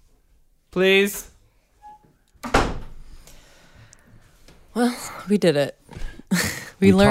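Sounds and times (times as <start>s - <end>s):
speech: 0.7s - 1.3s, 4.8s - 7.0s
door swinging shut with a solid thud: 2.4s - 3.0s.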